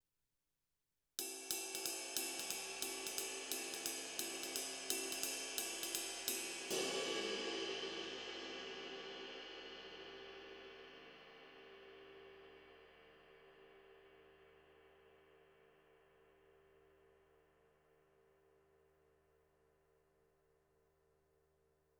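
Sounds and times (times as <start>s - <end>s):
22-inch jazz ride cymbal: 1.2s - 13.1s.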